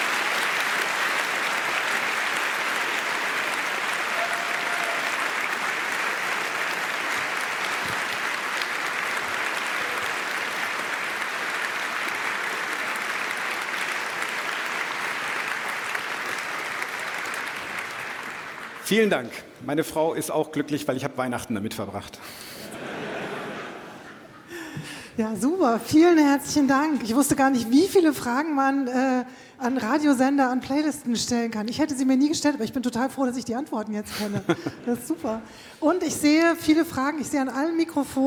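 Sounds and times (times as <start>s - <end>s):
large audience applause after a talk: 0.0s - 19.1s
speech: 18.9s - 22.6s, 25.2s - 38.2s
laughter: 22.7s - 24.7s, 34.1s - 35.2s.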